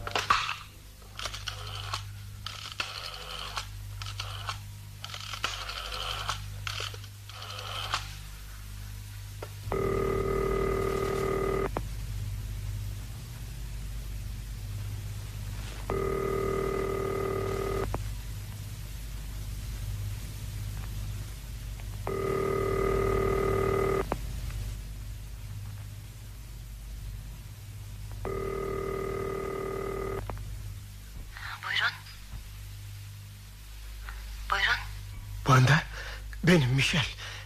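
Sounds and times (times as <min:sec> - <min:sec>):
faint low hum: 0:00.0 - 0:37.4
telephone ringback tone: 0:09.7 - 0:11.7, 0:15.9 - 0:17.9, 0:22.1 - 0:24.1, 0:28.2 - 0:30.2
speech: 0:36.4 - 0:37.2.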